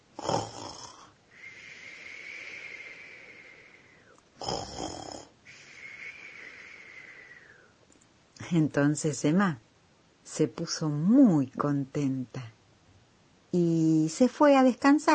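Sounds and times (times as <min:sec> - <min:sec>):
soft snoring: 0:00.2 - 0:07.7
speech: 0:08.5 - 0:09.6, 0:10.3 - 0:12.5, 0:13.5 - 0:15.1.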